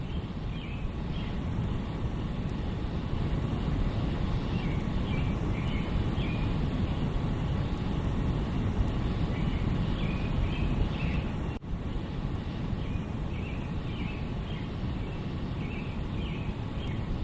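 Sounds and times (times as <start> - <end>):
birds chirping and singing at night in Phnom Penh Cambodia: 0.0 - 1.6, 4.2 - 8.0, 9.0 - 11.6, 12.6 - 17.2
constant heavy rumble and hiss: 0.0 - 17.2.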